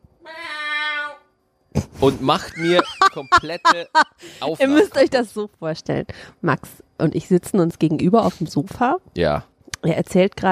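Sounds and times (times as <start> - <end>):
person imitating a tomcat meowing: 0.2 - 1.2
laughter: 2.0 - 5.1
speech: 2.0 - 10.5.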